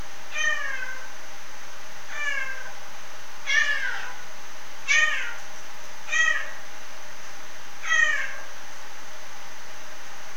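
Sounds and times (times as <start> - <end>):
steady background noise: 0.0 - 10.3
captive rusty-spotted cat meow-like calls in a zoo in Frankfurt: 0.3 - 1.1, 2.1 - 2.8, 3.4 - 4.2, 4.9 - 5.4, 6.1 - 6.6, 7.8 - 8.5.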